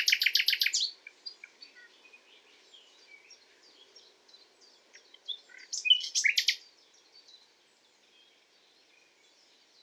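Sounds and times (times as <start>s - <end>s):
common nightingale Luscinia megarhynchos singing: 0.0s - 6.6s.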